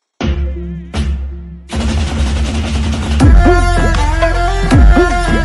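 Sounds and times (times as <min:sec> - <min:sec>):
dhol drum message notification: 0:00.2 - 0:05.3.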